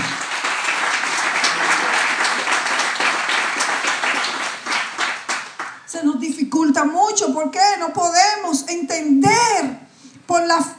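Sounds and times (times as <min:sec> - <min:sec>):
crowd applauding during a sermon: 0:00.0 - 0:05.9
speech: 0:06.3 - 0:10.7.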